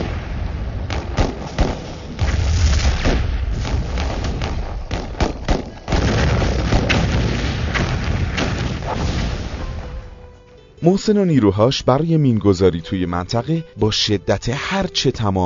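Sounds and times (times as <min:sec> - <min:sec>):
tank shell and mortar round explosions on a road: 0:00.0 - 0:10.6
speech: 0:10.8 - 0:15.4.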